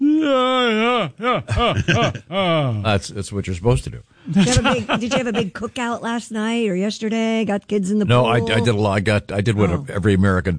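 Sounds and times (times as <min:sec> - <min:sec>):
man's loud drawn-out voiced yawn: 0:00.0 - 0:02.8
speech: 0:01.1 - 0:10.5
laughter: 0:01.2 - 0:02.7, 0:04.3 - 0:05.8.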